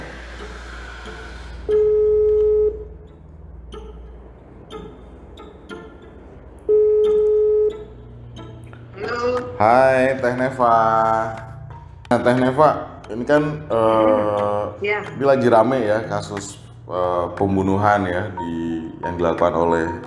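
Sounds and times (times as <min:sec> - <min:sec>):
telephone ringback tones: 0:01.7 - 0:03.0, 0:06.7 - 0:08.0
faint clicks and bleeps on the phone line: 0:01.7 - 0:03.2, 0:06.6 - 0:08.0
speech: 0:09.6 - 0:11.5, 0:12.1 - 0:20.0.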